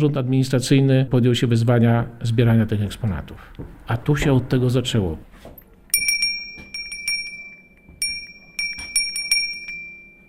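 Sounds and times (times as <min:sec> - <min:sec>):
speech: 0:00.0 - 0:05.6
small sleigh bell ringing: 0:05.9 - 0:10.2.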